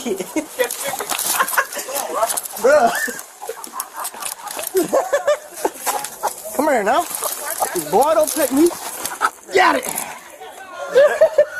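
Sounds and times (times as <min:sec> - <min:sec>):
speech: 0:00.0 - 0:01.4, 0:02.7 - 0:03.2, 0:06.7 - 0:08.9, 0:09.5 - 0:10.0
agitated chicken clucking and squawking: 0:00.0 - 0:07.9, 0:08.7 - 0:09.5
scuffling: 0:00.0 - 0:11.3
laughter: 0:00.0 - 0:11.5.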